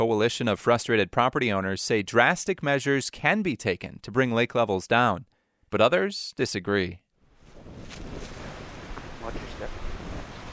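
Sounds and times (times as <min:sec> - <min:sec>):
speech: 0:00.0 - 0:07.0
wind roaring along the Lake Michigan shore on a cold snowy afternoon: 0:07.3 - 0:10.5.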